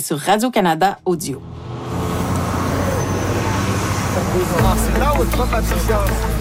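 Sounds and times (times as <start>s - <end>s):
speech: 0.0s - 1.6s, 4.4s - 6.3s
city bus engine rumbling: 0.0s - 6.3s
street traffic at the corner of two big roads in Montreal: 0.0s - 6.3s
students chattering getting off a city bus: 2.7s - 6.3s.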